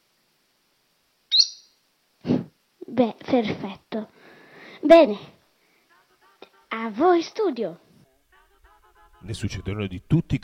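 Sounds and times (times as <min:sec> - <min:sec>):
caged bird harsh squawk: 0:01.3 - 0:01.7
caged bird high piercing chirp: 0:01.3 - 0:01.8
speech: 0:02.9 - 0:04.2, 0:04.8 - 0:05.4, 0:06.9 - 0:07.8, 0:09.2 - 0:10.4.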